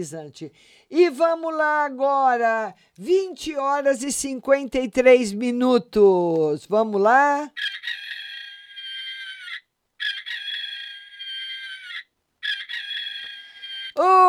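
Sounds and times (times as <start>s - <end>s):
speech: 0.0s - 7.9s
rooster crowing: 7.6s - 14.0s.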